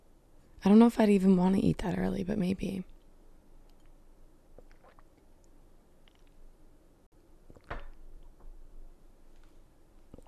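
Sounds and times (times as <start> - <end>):
speech: 0.6 - 2.9
person drinking water: 3.7 - 6.4, 7.4 - 8.0, 10.0 - 10.2
gulp: 4.6 - 5.1
wet mouth clicks: 4.6 - 6.4.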